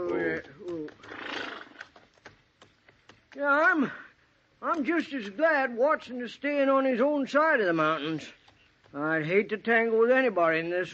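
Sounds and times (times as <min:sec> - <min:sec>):
horse giving a long breathy snort: 0:01.0 - 0:01.8
horse neighing: 0:01.0 - 0:01.9
speech: 0:03.4 - 0:04.0, 0:04.8 - 0:10.9.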